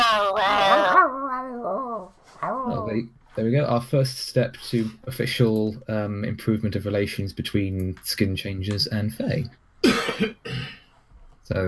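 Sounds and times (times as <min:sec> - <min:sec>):
dog whimpering: 0:00.0 - 0:03.0
speech: 0:02.9 - 0:10.8, 0:11.5 - 0:11.6.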